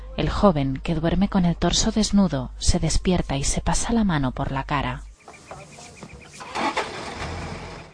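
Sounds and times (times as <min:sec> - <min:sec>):
faint outdoor noise: 0:00.0 - 0:07.9
speech: 0:00.2 - 0:05.1
engine turning over and roaring: 0:06.2 - 0:07.9.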